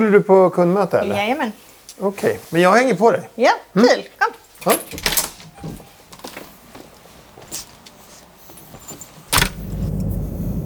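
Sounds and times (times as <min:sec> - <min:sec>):
speech: 0:00.0 - 0:05.8
keys jingling: 0:04.4 - 0:06.6, 0:07.4 - 0:09.7
light footsteps: 0:04.7 - 0:09.6
car door thudding shut: 0:09.3 - 0:10.6.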